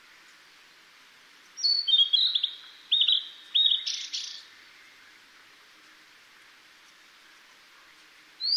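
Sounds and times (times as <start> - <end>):
blue-and-white flycatcher singing: 1.6 - 4.5.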